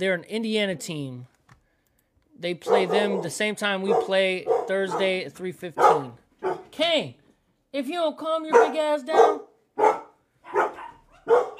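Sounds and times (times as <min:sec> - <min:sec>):
speech: 0:00.0 - 0:01.3, 0:02.4 - 0:09.9
dog barking: 0:02.6 - 0:05.2, 0:05.8 - 0:06.8, 0:08.5 - 0:11.5.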